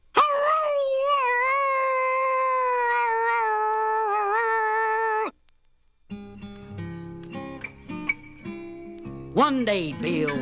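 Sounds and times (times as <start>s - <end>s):
coyote howling: 0.2s - 5.4s
music: 6.1s - 10.4s
speech: 9.4s - 10.4s.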